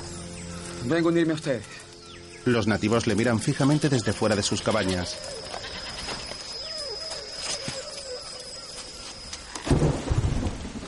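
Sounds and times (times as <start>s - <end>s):
speech: 0.8s - 5.6s
torrential rain at night on village huts: 9.4s - 10.8s
loud burst of thunder rumbling: 9.6s - 10.8s.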